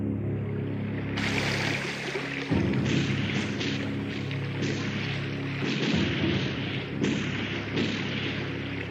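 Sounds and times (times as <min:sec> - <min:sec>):
boat engines rumbling: 0:00.2 - 0:08.9
lapping water: 0:00.5 - 0:08.9
distant gunfire near ships on a river: 0:02.8 - 0:08.9.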